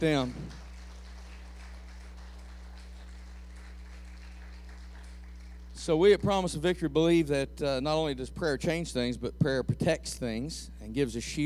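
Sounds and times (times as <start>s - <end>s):
speech: 0.0s - 0.5s, 5.8s - 11.4s
audience applauding teachers and teacher's aides: 0.0s - 5.7s
constant low electrical hum: 0.0s - 11.4s.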